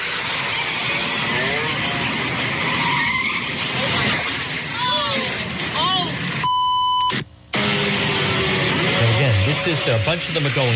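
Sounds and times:
tires screeching: 0.0 - 6.4, 7.6 - 10.7
loud steady traffic noise: 0.0 - 6.5, 7.1 - 10.7
brief electronic beep: 6.4 - 7.2
speech: 9.8 - 10.7.

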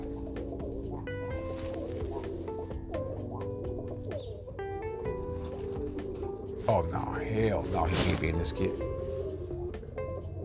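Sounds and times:
rustling: 0.0 - 3.3, 5.0 - 9.8
pigeons cooing: 0.0 - 10.4
speech: 6.7 - 9.0.

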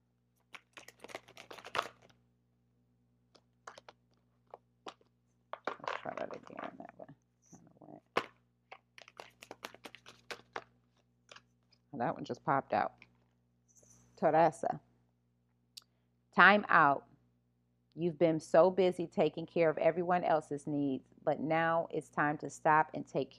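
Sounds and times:
deck of cards tapping and snapping as it is squared and cut: 0.4 - 2.1, 8.1 - 10.7
deck of cards shuffling: 0.4 - 2.2, 8.1 - 11.5
speech: 12.0 - 13.0, 14.2 - 14.9, 16.4 - 17.1, 18.0 - 23.3.

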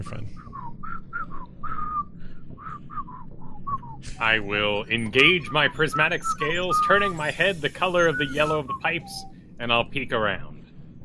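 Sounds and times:
low rumbling hum: 0.0 - 11.0
person whistling a short bouncy tune: 0.4 - 4.0, 4.9 - 9.3
speech: 4.2 - 10.5.

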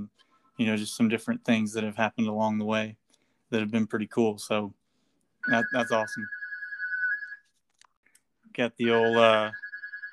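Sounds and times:
speech: 0.1 - 4.8, 5.4 - 6.4, 8.6 - 9.6
landline wall phone ringing with an electronic tone: 5.4 - 7.4, 8.8 - 10.1.

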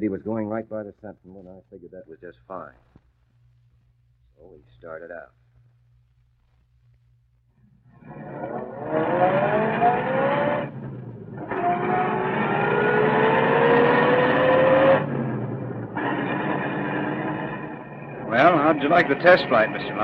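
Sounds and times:
speech: 0.0 - 3.1, 4.4 - 5.4, 18.4 - 20.0
car engine starting and pulling away through gear changes: 7.9 - 20.0.

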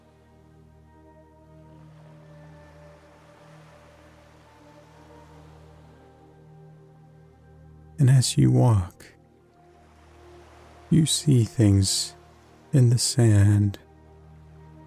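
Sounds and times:
small waves lapping against a white sand shore: 0.0 - 6.4, 9.4 - 14.8
low sustained humming drone: 0.0 - 14.8
speech: 8.0 - 9.2, 10.9 - 13.8.

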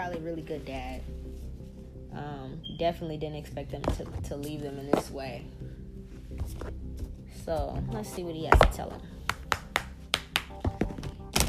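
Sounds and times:
speech: 0.0 - 1.5, 2.1 - 5.7, 6.4 - 9.2
deck of cards being shuffled: 6.3 - 7.2, 9.3 - 11.4.

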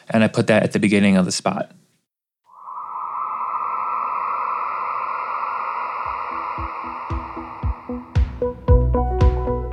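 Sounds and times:
speech: 0.2 - 1.8
eerie cell phone alert tone with heavy delay and reverb: 2.5 - 8.6
hits: 2.5 - 8.8
staccato low pulses: 4.0 - 9.0.

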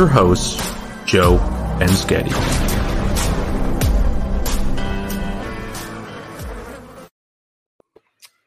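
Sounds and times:
speech: 0.0 - 2.7
loud bee buzzing intro sound effect: 1.2 - 7.1.

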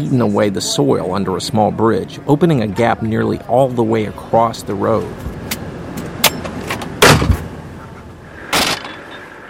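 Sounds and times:
speech: 0.0 - 5.4
vehicle engine rumbling: 0.0 - 9.4
sharp mechanical clunks: 5.4 - 7.5.

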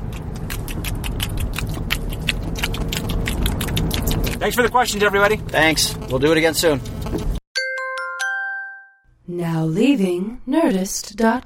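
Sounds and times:
person chewing a chocolate egg: 0.0 - 4.7
speech: 4.4 - 7.3, 9.4 - 11.4.

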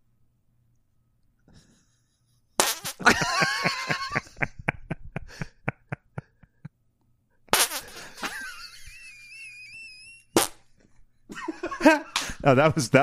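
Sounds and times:
wet fart noises made with cupped hands: 2.6 - 3.1, 7.5 - 8.2, 10.4 - 10.7
laughter: 3.0 - 6.7, 7.8 - 10.1, 11.3 - 13.0
speech: 11.8 - 13.0.

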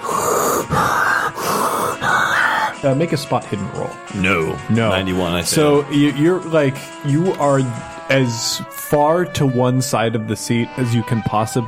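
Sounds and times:
voice imitating heavy breathing in large gulps: 0.0 - 3.0
speech: 2.8 - 11.6.

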